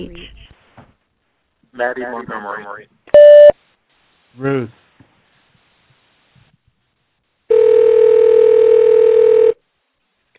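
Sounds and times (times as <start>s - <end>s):
speech: 1.8s - 3.0s, 4.4s - 4.8s
call-screening telephone tone while call tries to connect: 3.2s - 3.5s, 7.5s - 9.6s.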